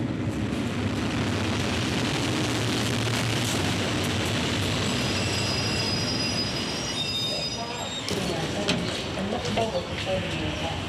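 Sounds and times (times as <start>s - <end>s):
commuter train rumbling into station platform: 0.0s - 10.8s
train wheel squeals while braking: 4.8s - 10.0s.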